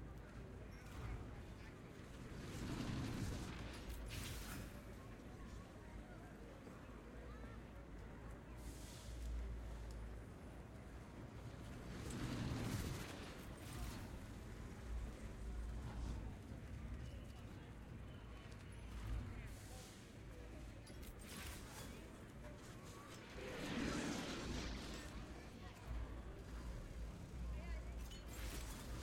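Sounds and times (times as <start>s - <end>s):
street ambience: 0.0s - 29.0s.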